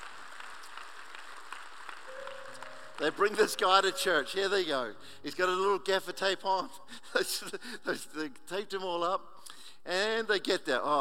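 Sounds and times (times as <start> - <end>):
church congregation clapping: 0.0 - 4.2
speech: 3.0 - 10.9.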